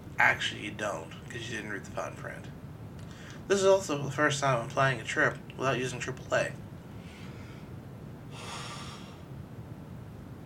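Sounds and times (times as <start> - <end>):
low steady hum: 0.0 - 10.4
speech: 0.2 - 2.6, 3.5 - 6.6
breathy yawn: 8.3 - 9.3.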